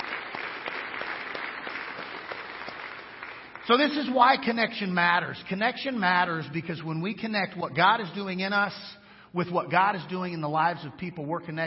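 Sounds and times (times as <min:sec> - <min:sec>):
crowd applause as praise to the Lord: 0:00.0 - 0:04.0
speech: 0:03.7 - 0:11.6.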